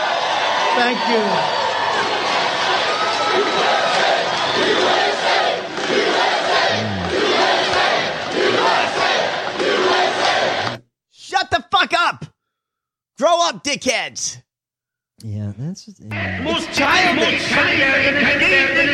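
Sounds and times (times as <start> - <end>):
large crowd cheering and shouting: 0.0 - 10.7, 16.1 - 18.9
speech: 0.8 - 2.1, 13.2 - 14.4, 15.2 - 18.9.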